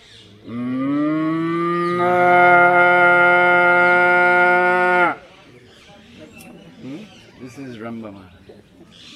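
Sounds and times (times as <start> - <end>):
speech: 0.4 - 0.6, 2.0 - 2.3
cow in a group of cows mooing: 0.5 - 5.2.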